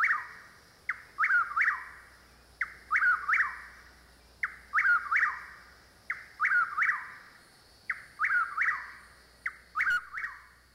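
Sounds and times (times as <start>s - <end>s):
Chuck-will's-widow whistled three-part phrase: 0.0s - 0.4s, 1.2s - 2.0s, 2.6s - 3.7s, 4.4s - 7.2s, 7.9s - 10.5s
chorus of frogs: 0.0s - 10.7s.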